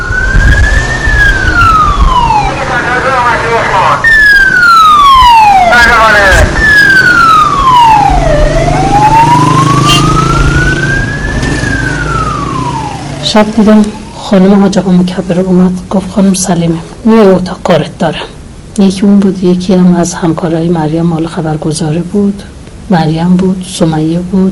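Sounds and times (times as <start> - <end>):
Tehran emergency ambulance siren wailing: 0.0 - 14.8
low rumble of engine and traffic: 0.0 - 24.5
speech: 13.3 - 24.5.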